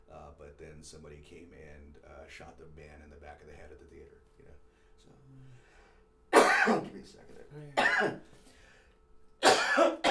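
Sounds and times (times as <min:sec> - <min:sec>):
speech: 0:00.8 - 0:05.7, 0:06.6 - 0:08.5
person coughing harshly: 0:06.4 - 0:07.0, 0:07.8 - 0:08.3, 0:09.4 - 0:10.0.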